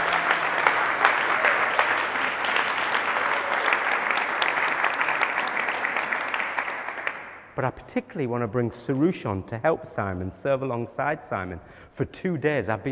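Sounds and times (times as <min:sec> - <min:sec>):
audience applause: 0:00.0 - 0:07.5
speech: 0:07.6 - 0:12.9.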